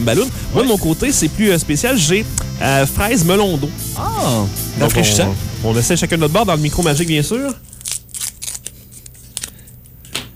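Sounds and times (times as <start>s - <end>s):
speech: 0.0s - 7.7s
plastic bubble gum packet being torn open: 7.6s - 9.7s.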